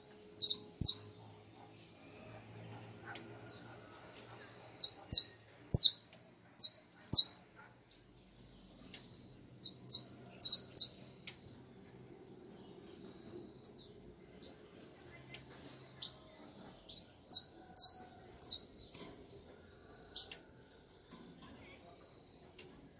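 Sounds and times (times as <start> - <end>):
Portuguese domestic canary giving short bright high chirps: 0.3 - 20.7, 21.8 - 22.9.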